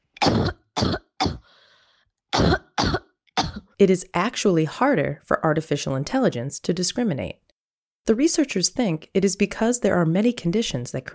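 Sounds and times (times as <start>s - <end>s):
COVID-positive person with symptoms coughing: 0.2s - 1.6s, 2.3s - 3.8s
faint raspy breath: 1.4s - 2.1s
speech: 3.8s - 7.4s, 8.0s - 11.1s.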